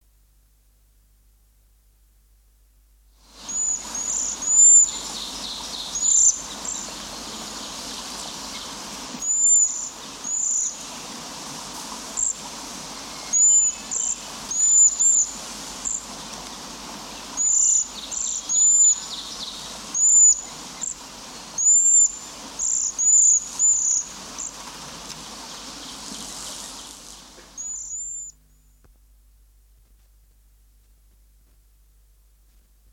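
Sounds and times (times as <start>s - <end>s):
cedar waxwing and songbirds calling: 3.4s - 11.3s, 11.9s - 28.4s.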